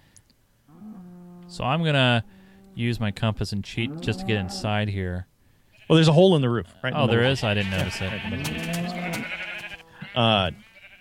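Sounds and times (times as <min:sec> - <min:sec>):
speech: 0:01.5 - 0:05.3, 0:05.9 - 0:09.4, 0:10.1 - 0:10.6
video game sheep bleating: 0:05.7 - 0:06.1, 0:06.7 - 0:10.9.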